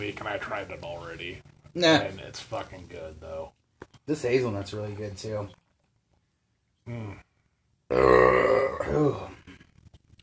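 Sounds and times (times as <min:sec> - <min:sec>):
speech: 0:00.0 - 0:05.6, 0:06.9 - 0:07.3, 0:07.9 - 0:09.3
long loud burp: 0:07.9 - 0:09.6.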